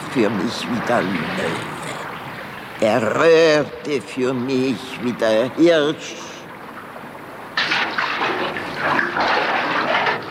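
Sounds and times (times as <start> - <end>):
running water: 0.0 - 10.2
speech: 0.2 - 1.8, 2.8 - 6.3.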